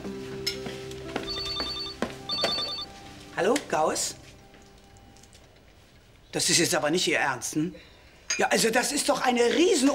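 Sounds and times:
telephone ringing with electronic trill: 1.2 - 2.9
speech: 3.4 - 4.2, 6.3 - 9.9.

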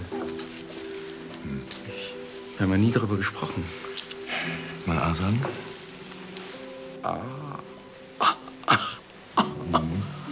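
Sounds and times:
speech: 1.5 - 5.7, 7.0 - 8.9
low voiced throat sounds and murmuring: 7.0 - 10.2
person with an irritating cough coughing harshly: 8.2 - 10.0.

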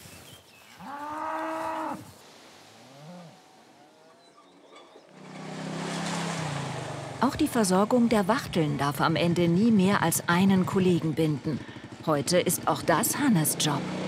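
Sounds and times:
steady outdoor noise: 0.0 - 14.0
cattle mooing on a pasture in early summer: 0.8 - 2.2, 2.8 - 4.4
speech: 7.2 - 14.0.

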